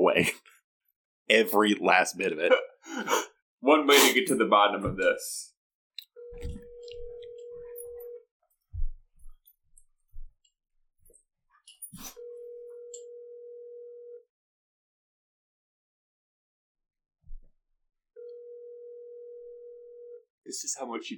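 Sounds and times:
speech: 0:00.1 - 0:00.5, 0:01.3 - 0:05.5, 0:20.5 - 0:21.1
ringback tones of an outgoing phone call: 0:06.2 - 0:08.2, 0:12.1 - 0:14.2, 0:18.2 - 0:20.2.

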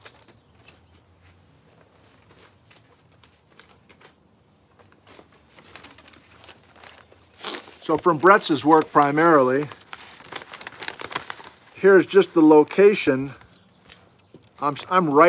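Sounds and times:
waterlogged sheet of paper crinkling and rustling: 0:01.7 - 0:15.2
speech: 0:07.9 - 0:09.8, 0:11.8 - 0:13.4, 0:14.6 - 0:15.2.

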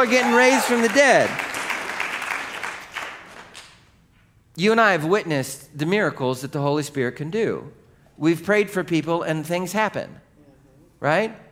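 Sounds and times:
speech: 0:00.0 - 0:01.5, 0:04.6 - 0:10.2, 0:11.0 - 0:11.4
crowd applauding: 0:00.0 - 0:03.9.

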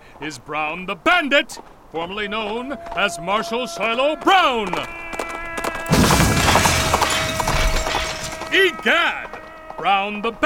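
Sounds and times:
speech: 0:00.2 - 0:05.0, 0:08.5 - 0:10.4
crate of dishware crashing: 0:05.9 - 0:09.0
shattering crockery and tinkling fragments: 0:05.9 - 0:09.1.

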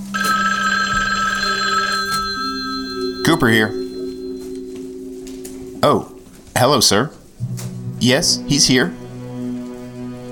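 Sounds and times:
telephone ringing with a steady electronic tone: 0:00.0 - 0:04.8
speech: 0:03.4 - 0:03.8, 0:05.8 - 0:09.0.

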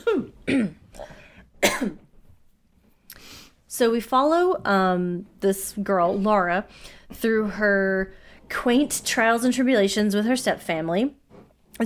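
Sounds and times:
person coughing: 0:00.0 - 0:02.1
speech: 0:00.5 - 0:00.8, 0:03.8 - 0:11.2.

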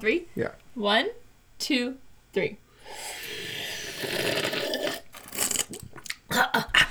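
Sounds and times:
speech: 0:00.0 - 0:03.2, 0:06.4 - 0:06.8
person slurping hot coffee: 0:02.8 - 0:06.3.

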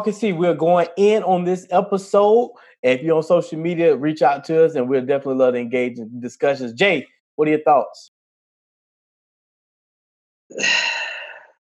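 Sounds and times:
speech: 0:00.0 - 0:08.1, 0:10.5 - 0:10.9
person taking a deep breath: 0:10.6 - 0:11.6.

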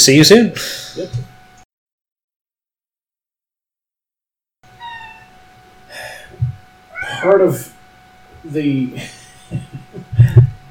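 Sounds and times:
speech: 0:00.0 - 0:01.3, 0:07.2 - 0:07.8, 0:08.4 - 0:09.8
cat meowing for attention: 0:04.7 - 0:05.4, 0:06.9 - 0:07.4
laughter: 0:09.0 - 0:10.6.

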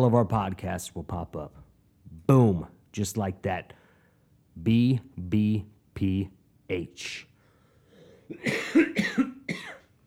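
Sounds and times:
speech: 0:00.0 - 0:01.6, 0:02.3 - 0:03.8, 0:04.6 - 0:07.3, 0:08.3 - 0:09.3
person coughing harshly: 0:08.0 - 0:10.0.

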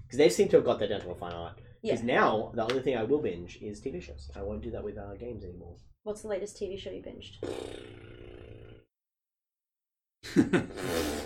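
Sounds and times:
speech: 0:00.1 - 0:08.6, 0:10.2 - 0:11.1
wet sputtering mouth fart: 0:07.4 - 0:08.9, 0:10.5 - 0:11.2.

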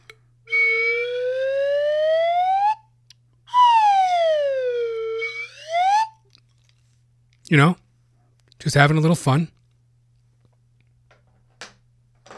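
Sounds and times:
slide whistle: 0:00.5 - 0:02.9, 0:03.5 - 0:06.2
speech: 0:07.5 - 0:07.8, 0:08.6 - 0:09.6.

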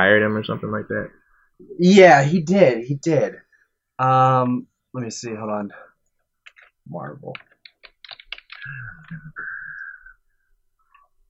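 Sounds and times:
speech: 0:00.0 - 0:03.4, 0:04.0 - 0:05.9, 0:06.9 - 0:07.5, 0:08.6 - 0:09.5
typing on a computer keyboard: 0:06.4 - 0:09.2.

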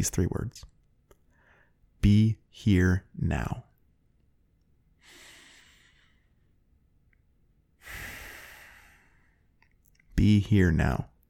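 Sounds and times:
speech: 0:00.0 - 0:00.7, 0:02.0 - 0:03.7, 0:10.2 - 0:11.1
deep breaths during a guided mindfulness exercise: 0:01.2 - 0:01.8, 0:05.0 - 0:06.6, 0:07.8 - 0:09.6.

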